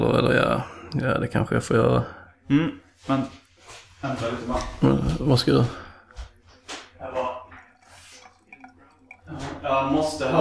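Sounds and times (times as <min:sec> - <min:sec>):
speech: 0:00.0 - 0:05.8, 0:09.3 - 0:10.3
water splashing and gurgling poured into a glass: 0:07.5 - 0:10.3
light clink of glassware: 0:07.6 - 0:09.6.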